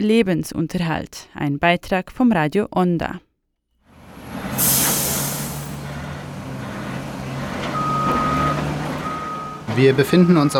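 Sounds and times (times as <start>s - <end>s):
speech: 0.0s - 3.3s, 9.8s - 10.5s
garbage truck low engine rumble: 3.8s - 10.5s
reversing beeps from garbage trucks at a waste transfer station in Porto Alegre, Brazil: 7.7s - 10.5s.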